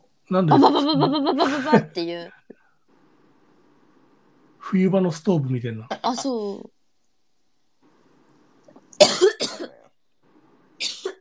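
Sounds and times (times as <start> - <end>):
speech: 0.3 - 2.4, 4.7 - 6.7
laughter: 0.4 - 2.0
harsh coughing: 9.0 - 9.8.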